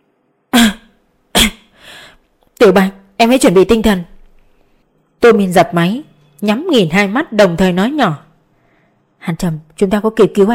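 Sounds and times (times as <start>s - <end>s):
dry cough: 0.6s - 1.8s
speech: 2.6s - 4.1s, 5.2s - 8.2s, 9.2s - 10.5s.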